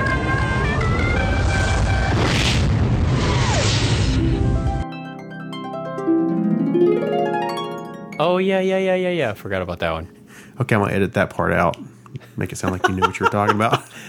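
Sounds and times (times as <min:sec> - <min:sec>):
music: 0:00.0 - 0:02.3, 0:04.2 - 0:10.9
deep rumbling self-destruct explosion: 0:00.0 - 0:04.8
speech: 0:08.2 - 0:14.0
laughter: 0:12.6 - 0:14.0.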